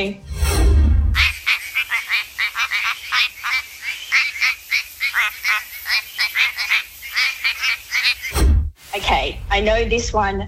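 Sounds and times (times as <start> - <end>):
speech: 0.0 - 0.3, 9.6 - 10.4
quacking frog calling: 1.2 - 8.4
low rumble: 8.4 - 10.4.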